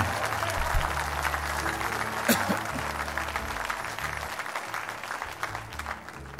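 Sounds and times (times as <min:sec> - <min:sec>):
scattered cheers: 0:00.0 - 0:04.6
audience clapping: 0:00.0 - 0:06.3.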